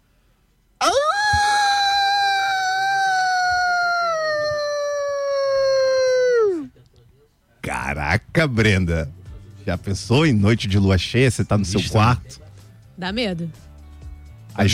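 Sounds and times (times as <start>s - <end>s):
person imitating a wolf howl: 0.8s - 6.7s
speech: 8.4s - 12.4s, 13.0s - 13.7s, 14.6s - 14.7s.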